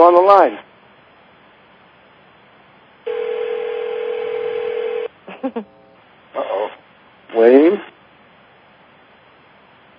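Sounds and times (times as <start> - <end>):
speech: 0.0 - 0.7, 5.5 - 5.8, 7.3 - 7.9
phone-line tone as conference callers are unmuted: 3.1 - 5.1.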